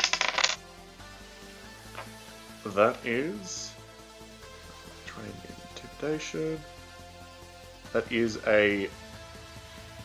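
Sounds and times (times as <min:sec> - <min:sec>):
dice clattering across a hard surface: 0:00.0 - 0:00.6
speech: 0:02.6 - 0:03.8, 0:05.2 - 0:06.7, 0:07.9 - 0:09.0.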